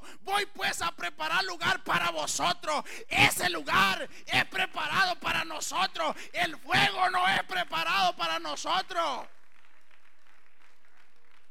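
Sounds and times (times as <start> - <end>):
speech: 0.3 - 9.4
church congregation applauding: 7.8 - 11.4.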